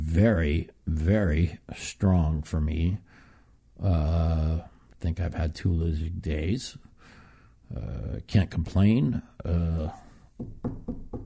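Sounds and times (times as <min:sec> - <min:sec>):
speech: 0:00.2 - 0:03.1, 0:03.8 - 0:06.9, 0:07.7 - 0:11.2
knuckles rapping on a wooden surface: 0:10.4 - 0:11.2.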